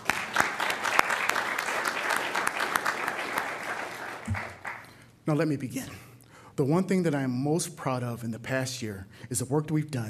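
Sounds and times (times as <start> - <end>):
audience applauding: 0.0 - 5.0
speech: 5.3 - 10.0.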